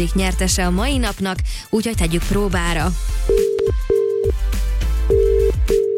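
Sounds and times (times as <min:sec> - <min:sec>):
speech: 0:00.0 - 0:03.8
telephone line tone beeps as a radio host dials a listener's number: 0:03.3 - 0:04.4, 0:05.1 - 0:05.9.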